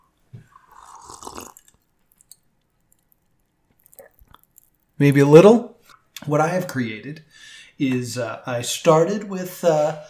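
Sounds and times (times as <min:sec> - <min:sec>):
slurping sip of a drink: 0:00.4 - 0:01.8
wet mouth clicks: 0:00.8 - 0:04.8
speech: 0:05.0 - 0:10.0.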